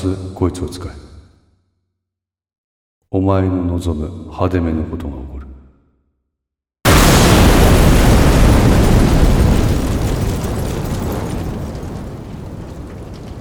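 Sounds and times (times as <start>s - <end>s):
speech: 0.0s - 1.1s, 3.1s - 5.4s
crackling debris: 6.9s - 13.3s
vehicle crashing and exploding with a roar: 6.9s - 13.3s.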